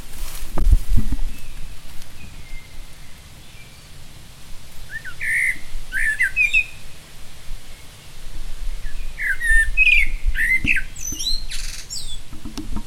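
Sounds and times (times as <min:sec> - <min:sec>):
common blackbird Turdus merula singing: 0:01.0 - 0:04.0, 0:04.8 - 0:07.0, 0:07.6 - 0:12.8.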